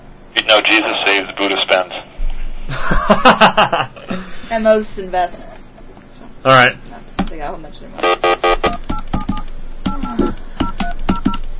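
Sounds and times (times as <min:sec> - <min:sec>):
speech: 0:00.4 - 0:02.1, 0:02.7 - 0:05.6, 0:06.4 - 0:08.8
laughter: 0:02.7 - 0:04.4
electronic telephone keypad beeps: 0:08.0 - 0:11.4.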